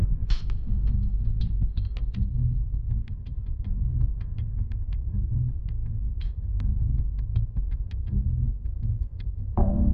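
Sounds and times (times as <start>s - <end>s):
suspense music: 0.0s - 9.9s.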